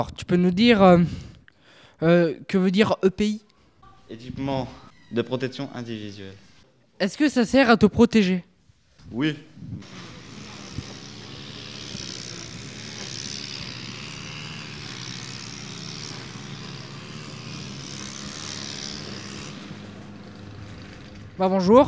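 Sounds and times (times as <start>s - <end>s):
speech: 0.0s - 1.3s, 2.0s - 3.5s, 4.1s - 6.4s, 7.0s - 8.5s, 9.1s - 10.1s, 21.4s - 21.8s
brush cutter engine buzzing: 6.3s - 6.6s, 9.4s - 21.8s.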